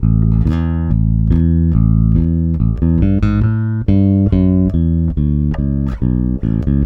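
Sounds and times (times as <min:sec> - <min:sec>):
country bass with chorus effect: 0:00.0 - 0:06.8.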